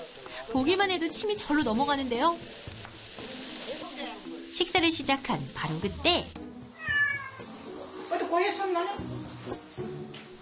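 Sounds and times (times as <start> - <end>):
speech: 0.5 - 2.7, 4.6 - 6.4, 8.3 - 9.1
cat meowing: 6.7 - 7.5.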